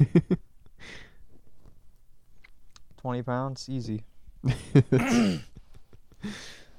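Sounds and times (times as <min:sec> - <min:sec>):
speech: 0:00.1 - 0:01.0, 0:03.0 - 0:05.5, 0:06.2 - 0:06.6
man coughing: 0:04.9 - 0:05.6
man clearing his throat: 0:05.0 - 0:05.6.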